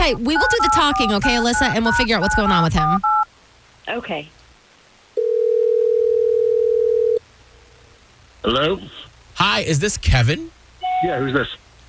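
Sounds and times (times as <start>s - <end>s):
speech: 0.0s - 3.2s, 3.9s - 4.4s, 8.4s - 11.6s
steady telephone tone as a phone call is placed: 0.2s - 3.2s, 5.2s - 7.2s.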